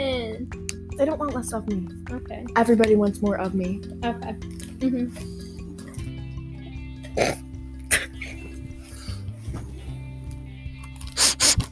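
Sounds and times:
speech: 0.5s - 5.4s, 7.2s - 7.4s
person sniffing into a video game headset microphone: 11.1s - 11.7s.

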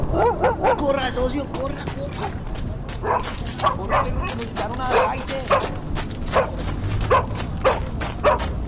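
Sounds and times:
short sharp dog barks: 0.1s - 0.9s, 2.1s - 8.5s
speech: 0.8s - 7.4s.

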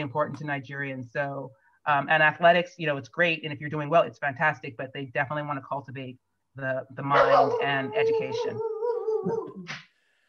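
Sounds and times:
speech: 0.0s - 8.6s, 9.2s - 9.8s
dog whining and yipping: 7.2s - 9.7s.

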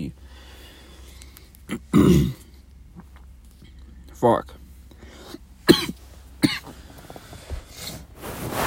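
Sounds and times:
person coughing up morning phlegm: 1.7s - 2.4s, 5.6s - 6.7s
throat-clearing of morning phlegm: 1.7s - 2.5s
speech: 4.2s - 4.6s.

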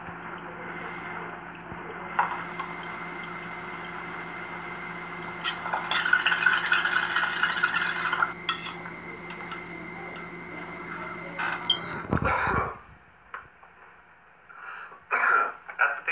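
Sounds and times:
low hum: 0.0s - 16.0s
person coughing from smoking cannabis: 12.1s - 12.9s, 15.1s - 15.6s
throat clearing from smoking cannabis: 12.1s - 12.9s, 15.1s - 15.6s.

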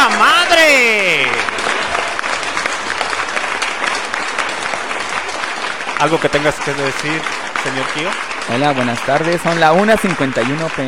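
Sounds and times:
applause: 0.0s - 10.8s
speech: 6.0s - 10.8s.

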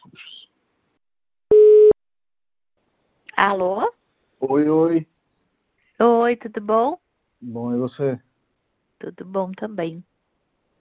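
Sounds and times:
telephone ringing tone while placing a call: 1.5s - 2.0s
speech: 3.4s - 5.1s, 6.0s - 8.3s, 9.0s - 10.1s.

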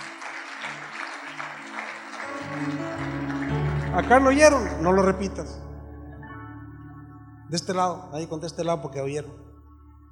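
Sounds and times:
crowd applauding with dense steady clapping: 0.0s - 5.4s
speech: 4.0s - 5.7s, 7.5s - 9.4s.

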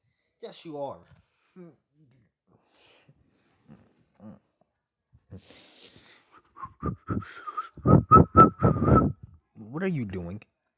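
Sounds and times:
speech: 0.4s - 2.2s, 5.3s - 5.8s, 6.6s - 10.5s
person whistling: 6.5s - 9.3s.

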